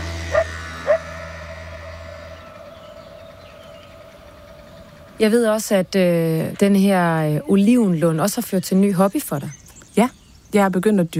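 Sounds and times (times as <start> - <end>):
steady low hum of noise: 0.0 - 11.1
dogs barking in Italy at sunrise: 0.3 - 1.2
speech: 5.2 - 11.1.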